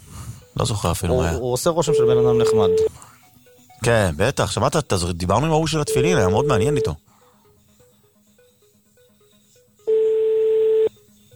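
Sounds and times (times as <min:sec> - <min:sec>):
steady telephone tone of a number being dialed: 0:00.4 - 0:02.9, 0:05.9 - 0:07.0, 0:09.8 - 0:11.0
speech: 0:00.6 - 0:03.0, 0:03.8 - 0:07.0.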